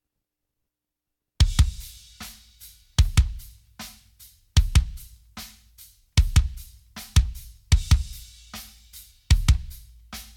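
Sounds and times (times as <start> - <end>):
kick drum: 1.4 - 2.0, 3.0 - 3.5, 4.6 - 5.2, 6.2 - 8.4, 9.3 - 10.3.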